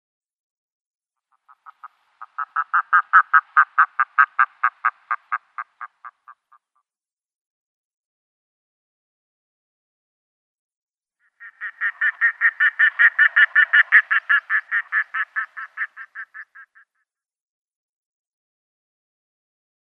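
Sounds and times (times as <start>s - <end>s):
Red-throated Diver flight calls: 1.3s - 6.7s, 11.2s - 17.0s.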